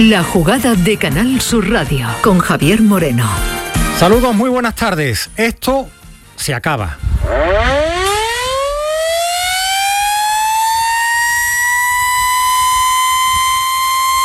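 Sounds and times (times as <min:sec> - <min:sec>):
speech: 0:00.0 - 0:07.8
factory siren wailing: 0:07.0 - 0:14.2.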